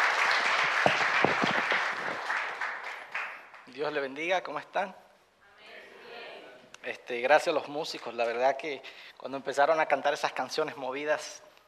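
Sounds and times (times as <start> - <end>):
crowd applauding warmly: 0.0 - 3.7
speech: 3.8 - 5.0, 6.8 - 11.5.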